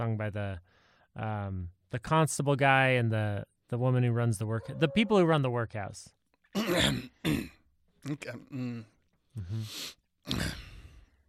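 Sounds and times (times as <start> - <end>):
speech: 0.0 - 10.6
voice imitating phlegmy throat clearing: 6.6 - 9.6, 10.3 - 11.0.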